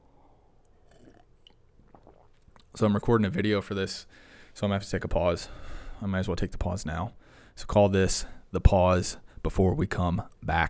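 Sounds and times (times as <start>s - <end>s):
person sipping coffee: 0.6s - 2.7s
soft wet mouth noises: 0.6s - 2.8s
speech: 2.8s - 10.6s.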